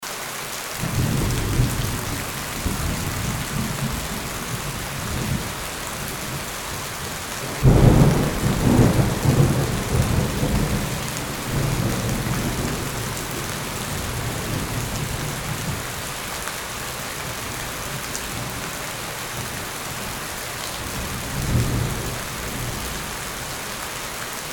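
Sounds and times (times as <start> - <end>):
heavy rain: 0.0 - 24.5
thunder: 0.8 - 16.0, 20.8 - 23.1.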